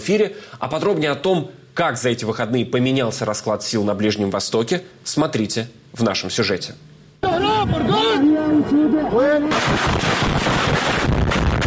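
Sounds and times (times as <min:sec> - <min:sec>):
speech: 0:00.0 - 0:11.2
agitated voices shouting: 0:07.2 - 0:09.2
powerful explosion with rumbling roar of debris: 0:09.5 - 0:11.6.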